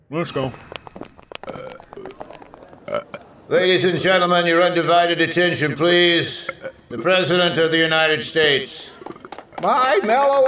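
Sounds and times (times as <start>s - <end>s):
speech: 0.1s - 0.8s, 3.5s - 9.0s, 9.6s - 10.4s
long rumbling belch: 1.4s - 2.1s, 2.9s - 3.2s, 6.4s - 7.6s, 8.8s - 9.8s.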